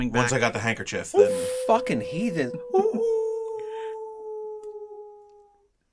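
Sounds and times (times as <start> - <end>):
speech: 0.0 - 3.1
wolves howling: 1.2 - 5.4.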